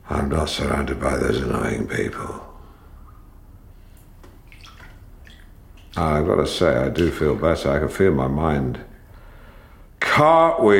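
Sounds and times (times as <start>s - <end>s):
low steady rumble: 0.0s - 10.0s
speech: 0.1s - 2.5s, 6.0s - 8.9s, 10.2s - 10.7s
water sloshing and dripping in a flotation tank: 2.6s - 7.4s.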